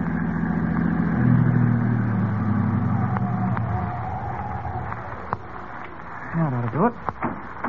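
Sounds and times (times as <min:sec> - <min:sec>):
car engine humming as the vehicle is driven off the road to park: 0:00.0 - 0:07.6
speech: 0:06.8 - 0:07.1.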